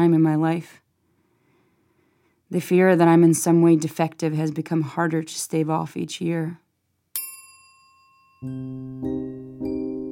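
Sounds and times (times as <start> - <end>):
speech: 0.0 - 0.8, 2.5 - 6.6, 8.4 - 9.7
bell ringing: 7.2 - 10.1.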